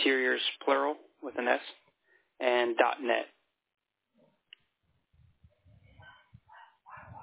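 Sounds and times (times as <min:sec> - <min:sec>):
speech: 0:00.1 - 0:01.8, 0:02.6 - 0:03.3
dog barking at the mail: 0:06.0 - 0:07.2.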